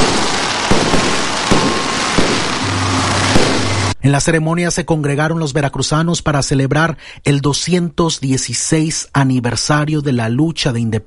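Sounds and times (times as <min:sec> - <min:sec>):
constant roaring crackle of fireworks: 0:00.0 - 0:04.0
fireworks exploding at an independence anniversary celebration: 0:00.0 - 0:04.0
speech: 0:04.0 - 0:11.0.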